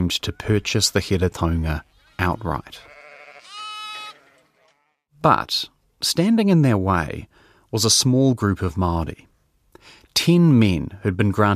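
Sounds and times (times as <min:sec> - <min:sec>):
speech: 0:00.1 - 0:02.9, 0:05.2 - 0:11.5
sheep bleating: 0:01.9 - 0:05.1.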